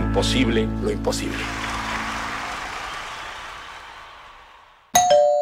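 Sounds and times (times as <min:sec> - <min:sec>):
speech: 0:00.2 - 0:01.7
doorbell chiming with a single bright ding: 0:05.0 - 0:05.4.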